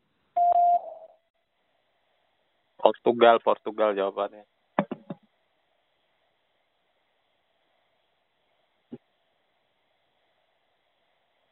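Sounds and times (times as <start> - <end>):
quiz answer prompt electronic beep tone: 0.4 - 1.1
speech: 3.0 - 4.6.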